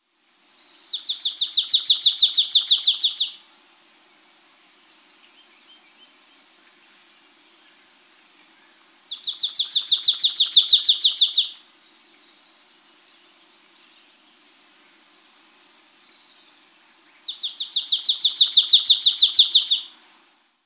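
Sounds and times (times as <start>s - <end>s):
Palm Warbler singing: 0.4s - 3.4s, 8.6s - 14.2s, 15.2s - 20.6s.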